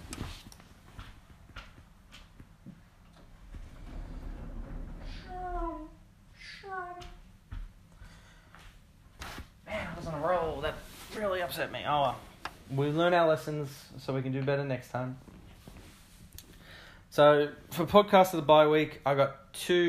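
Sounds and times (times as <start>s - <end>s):
scattered footsteps: 0.0s - 5.9s, 6.7s - 13.3s
door creaking on its hinges: 3.2s - 5.7s
speech: 11.5s - 15.3s, 17.2s - 19.8s.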